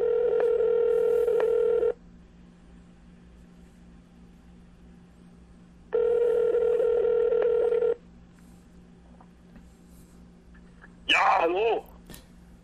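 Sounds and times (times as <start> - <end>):
phone ringing on speakerphone during an outgoing call: 0.0 - 2.0, 5.9 - 8.0
voice on the phone line: 11.1 - 11.9.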